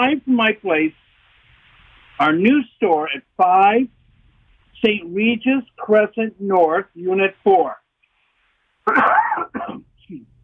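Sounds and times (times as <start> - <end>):
speech: 0.0 - 1.0, 2.2 - 4.0, 4.8 - 7.8, 8.8 - 10.3
person coughing in a laundry room: 8.9 - 9.9.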